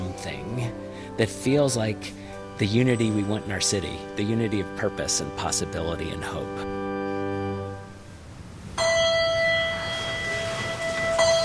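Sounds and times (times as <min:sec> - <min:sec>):
speech: 0:00.2 - 0:06.9
chapel bell chiming to start a service: 0:08.8 - 0:11.4.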